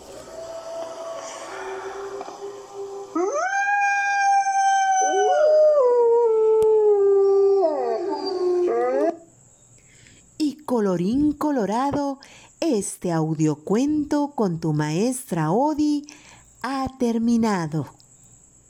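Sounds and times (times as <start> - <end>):
wolf howling in long wavering mournful notes: 0.2 - 9.3
speech: 10.8 - 18.0.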